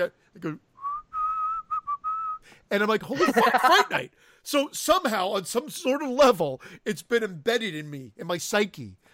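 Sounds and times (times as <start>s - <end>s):
speech: 0.0s - 0.7s, 2.7s - 9.1s
person whistling a short melodic phrase: 0.8s - 2.5s
laughter: 3.1s - 4.0s.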